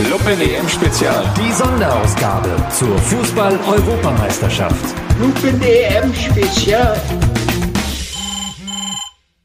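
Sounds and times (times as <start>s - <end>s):
speech: 0.1s - 7.4s
mobile phone ringing with a bright electronic ringtone: 8.1s - 9.2s.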